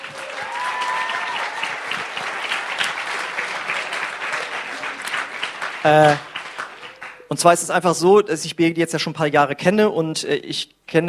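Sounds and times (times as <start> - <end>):
audience applauding: 0.0 - 7.6
speech: 5.8 - 6.3, 7.3 - 11.0.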